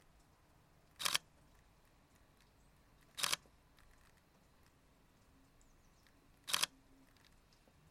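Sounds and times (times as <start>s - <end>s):
Sony a7R IV camera shutter: 1.0s - 1.3s, 3.1s - 3.4s, 6.5s - 7.2s.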